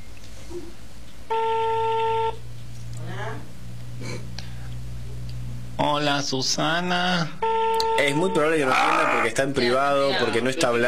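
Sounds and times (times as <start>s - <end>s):
low hum: 0.0s - 9.2s
speech: 0.5s - 1.6s, 6.0s - 10.8s
steady electronic telephone tone as a call is placed: 1.3s - 2.4s, 7.4s - 8.8s.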